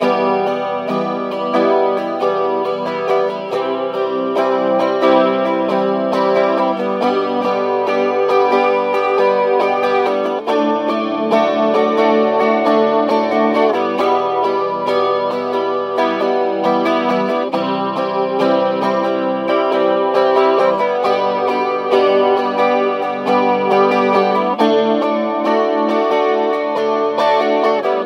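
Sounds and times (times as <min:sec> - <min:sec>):
guitar strumming E C G D chords: 0:00.0 - 0:28.0.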